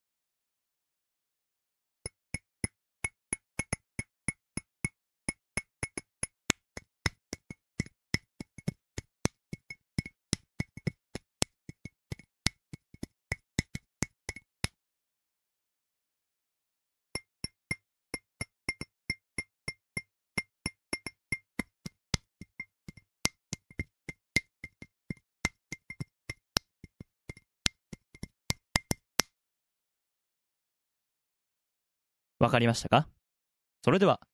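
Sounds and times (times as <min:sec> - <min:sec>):
tapping on a ceramic mug: 0:02.1 - 0:04.7, 0:05.3 - 0:14.4, 0:17.2 - 0:29.0
tapping on a glass cup: 0:02.4 - 0:04.7, 0:05.3 - 0:14.4, 0:17.2 - 0:26.7
speech: 0:32.4 - 0:33.2, 0:33.8 - 0:34.3.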